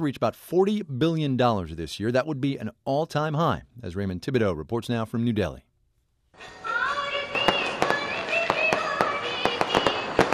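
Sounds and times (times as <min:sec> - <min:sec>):
speech: 0:00.0 - 0:05.7, 0:06.4 - 0:06.6
continuous festive din during Diwali in New Delhi: 0:06.4 - 0:10.3
fireworks crackling and banging during Diwali in New Delhi: 0:06.4 - 0:10.3.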